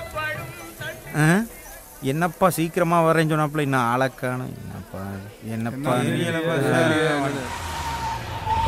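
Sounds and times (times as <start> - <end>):
speech: 1.1 - 7.7
car engine rumbling with a high whine as the car pulls up: 4.5 - 8.6.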